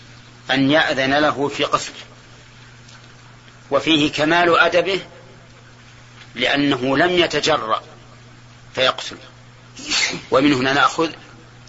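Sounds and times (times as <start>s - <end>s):
speech: 0.5s - 2.1s, 3.7s - 5.1s, 6.4s - 7.9s, 8.8s - 11.2s
person sneezing: 9.8s - 10.3s.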